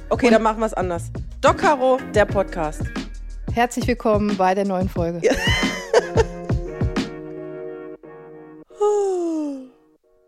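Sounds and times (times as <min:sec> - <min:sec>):
speech: 0:00.1 - 0:03.0, 0:03.6 - 0:05.7
laughter: 0:05.3 - 0:06.4
person yawning: 0:08.7 - 0:09.8.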